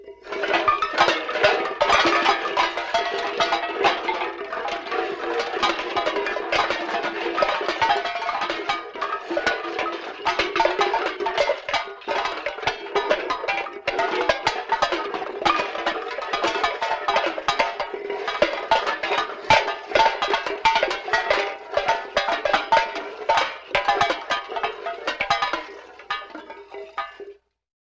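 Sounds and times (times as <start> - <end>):
tin cans dragging: 0.0 - 27.3.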